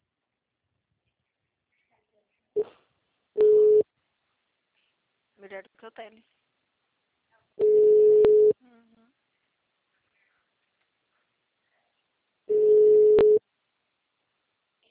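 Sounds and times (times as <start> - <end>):
telephone line tones while a call is being placed: 3.4 - 3.8, 7.6 - 8.5, 12.5 - 13.4
speech: 5.4 - 6.4.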